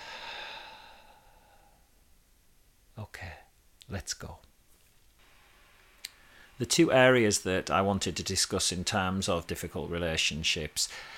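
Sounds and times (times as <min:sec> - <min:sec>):
deep breath in and out during a guided breathing exercise: 0:00.0 - 0:02.0, 0:10.9 - 0:11.1
speech: 0:03.0 - 0:04.5, 0:06.6 - 0:11.1.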